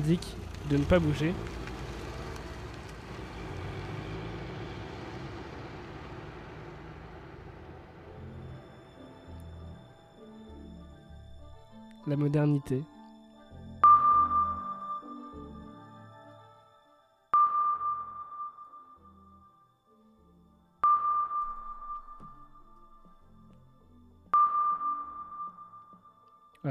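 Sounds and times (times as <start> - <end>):
speech: 0.0 - 1.6, 12.1 - 13.0
sonar pings: 13.8 - 15.5, 17.3 - 19.6, 20.8 - 23.4, 24.3 - 26.6.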